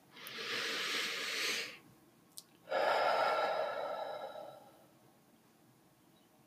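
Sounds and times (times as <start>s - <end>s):
deep breath in and out: 0.1s - 1.8s, 2.7s - 5.0s.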